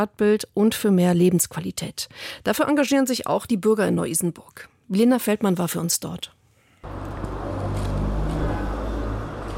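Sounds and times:
speech: 0.0 - 7.1
cars rushing past on a busy street: 6.8 - 9.5.

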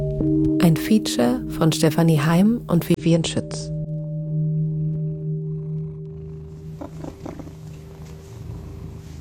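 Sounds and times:
speech: 0.2 - 3.7
cat purring: 4.7 - 9.1.

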